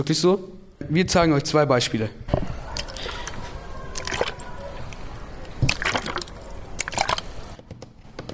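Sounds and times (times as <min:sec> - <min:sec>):
speech: 0:00.0 - 0:02.4
water sloshing in a shaken water bottle: 0:02.4 - 0:07.5.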